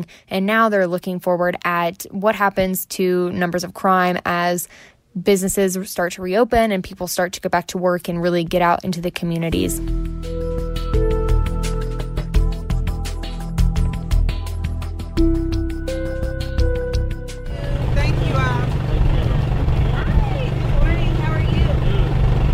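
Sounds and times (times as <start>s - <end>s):
speech: 0.0s - 10.4s
music playing: 9.5s - 22.1s
mobile market truck engine idling: 16.7s - 22.5s.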